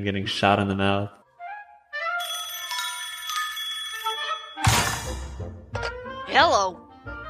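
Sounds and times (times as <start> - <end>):
speech: 0.0 - 1.2
telephone bell ringing: 2.2 - 4.8.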